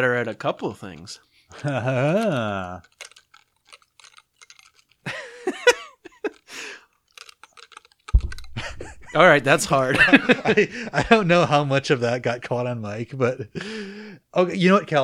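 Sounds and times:
speech: 0:00.0 - 0:03.1, 0:09.1 - 0:15.0
laughter: 0:01.5 - 0:02.7, 0:05.1 - 0:06.4, 0:08.6 - 0:11.6
pencil rolled with tongue behind teeth: 0:02.8 - 0:05.0, 0:06.2 - 0:09.6.

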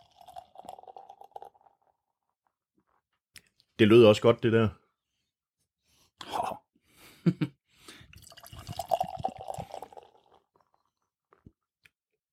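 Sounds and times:
beer pouring into a glass: 0:00.0 - 0:02.1, 0:08.1 - 0:11.6
speech: 0:03.8 - 0:04.8, 0:07.3 - 0:07.5.

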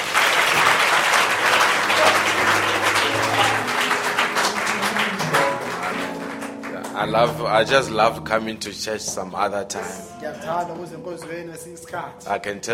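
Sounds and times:
church audience applauding after a sermon: 0:00.0 - 0:07.8
speech: 0:07.0 - 0:12.7.

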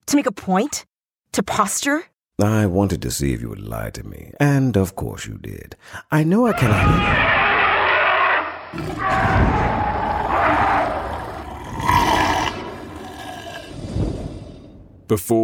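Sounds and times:
speech: 0:00.1 - 0:07.4, 0:08.7 - 0:09.8, 0:15.1 - 0:15.4
loud rumbling creature roar: 0:06.6 - 0:14.8.

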